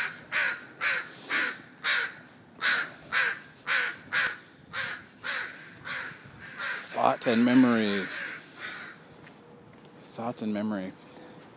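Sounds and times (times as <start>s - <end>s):
crows cawing: 0.0s - 9.4s
speech: 7.1s - 8.2s, 10.2s - 11.0s.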